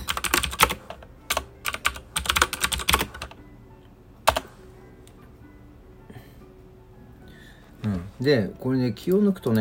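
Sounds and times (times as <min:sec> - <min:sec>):
computer keyboard typing: 0:00.0 - 0:03.4, 0:04.3 - 0:04.5
speech: 0:08.2 - 0:09.5.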